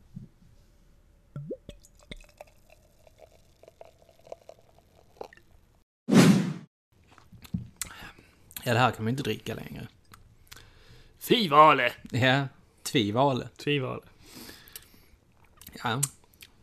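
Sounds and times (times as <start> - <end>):
fizzy bubbling of soda: 1.4 - 5.6
soda being poured into a glass: 1.4 - 5.6
speech: 8.7 - 10.0, 11.3 - 14.1, 15.8 - 16.2.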